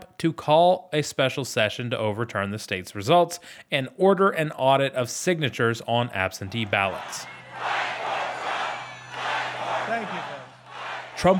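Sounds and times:
speech: 0.2s - 7.7s, 11.2s - 11.3s
large crowd at a political rally shouting and roaring: 6.4s - 11.3s.

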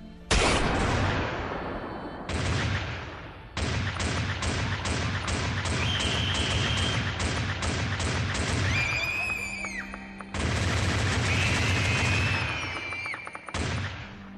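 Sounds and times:
rifle gunfire volleys: 0.3s - 14.2s
high-pitched screams: 8.6s - 10.2s, 11.2s - 13.6s.

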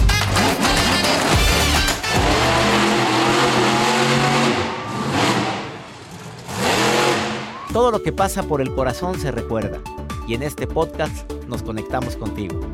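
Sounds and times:
pickup truck engine revving: 0.2s - 7.7s
speech: 7.8s - 12.7s.

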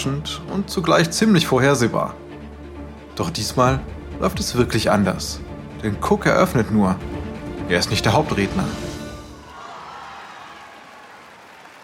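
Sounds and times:
speech: 0.0s - 2.2s, 3.2s - 8.9s
large audience clapping and cheering at a product presentation: 9.1s - 11.8s.

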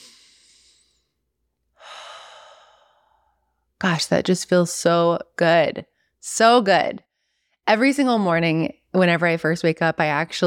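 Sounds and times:
person breathing in and out deeply: 0.0s - 1.1s, 1.8s - 3.5s
speech: 3.8s - 7.1s, 7.7s - 10.4s.

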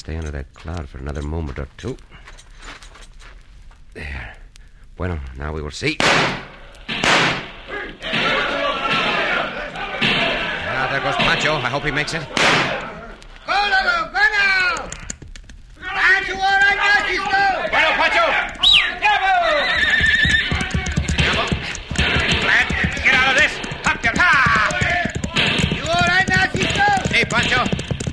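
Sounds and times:
speech: 0.0s - 2.4s, 4.0s - 4.4s, 5.0s - 6.5s, 11.0s - 12.9s
raised voices: 7.6s - 15.2s, 15.8s - 27.7s
horses galloping at full speed in a Western chase: 8.3s - 28.1s.

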